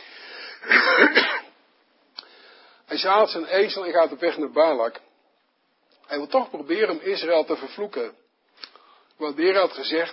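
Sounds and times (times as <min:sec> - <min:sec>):
man coughing: 0:00.6 - 0:01.6
speech: 0:03.0 - 0:05.1, 0:06.1 - 0:08.2, 0:09.2 - 0:10.1.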